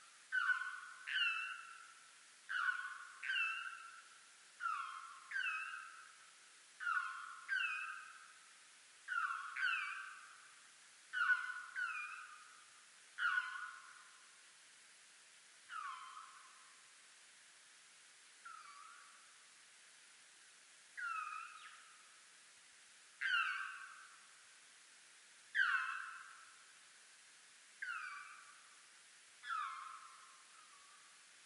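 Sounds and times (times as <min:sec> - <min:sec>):
juvenile Townsend's bird calling: 0:00.3 - 0:01.8, 0:02.5 - 0:03.9, 0:04.6 - 0:06.0, 0:06.8 - 0:08.2, 0:09.1 - 0:10.2, 0:11.1 - 0:12.4, 0:13.2 - 0:13.9, 0:15.7 - 0:16.5, 0:18.4 - 0:19.1, 0:21.0 - 0:21.9, 0:23.2 - 0:24.0, 0:25.6 - 0:26.3, 0:27.8 - 0:28.5, 0:29.4 - 0:30.8.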